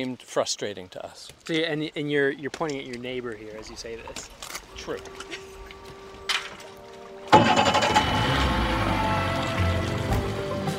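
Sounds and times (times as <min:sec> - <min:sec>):
speech: 0:00.0 - 0:05.4
boat motor starting and rumbling: 0:07.3 - 0:10.6.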